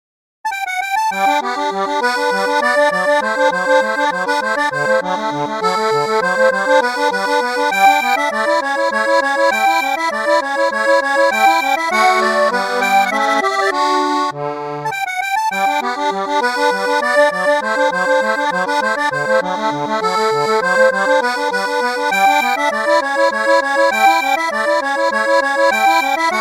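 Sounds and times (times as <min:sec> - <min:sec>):
classical piece on Anglo-Concertina: 0:00.5 - 0:26.4.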